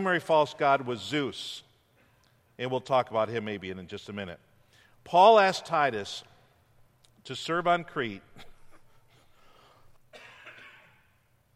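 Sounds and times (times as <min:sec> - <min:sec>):
speech: 0:00.0 - 0:01.7, 0:02.6 - 0:06.3, 0:07.2 - 0:08.5
breathing: 0:04.6 - 0:05.0, 0:09.0 - 0:10.0
person coughing: 0:10.1 - 0:11.2.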